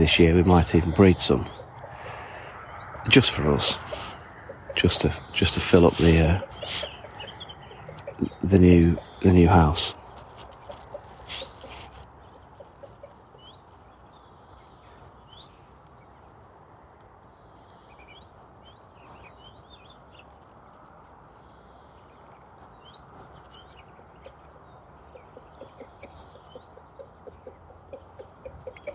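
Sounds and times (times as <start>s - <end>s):
speech: 0.0s - 1.6s, 3.1s - 4.0s, 4.8s - 6.9s, 8.2s - 10.0s
chickens clucking in an open area: 0.0s - 13.8s, 23.9s - 28.9s.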